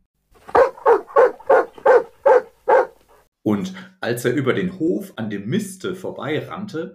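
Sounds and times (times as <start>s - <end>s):
dog barking: 0.5s - 3.0s
speech: 3.4s - 6.9s.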